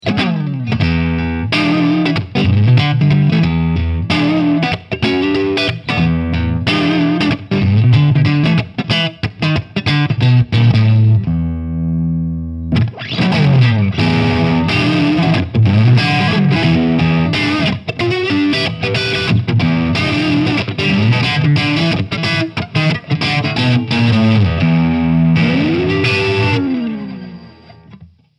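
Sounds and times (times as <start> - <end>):
electric guitar on single coil neck pickup: 0.0 - 28.3.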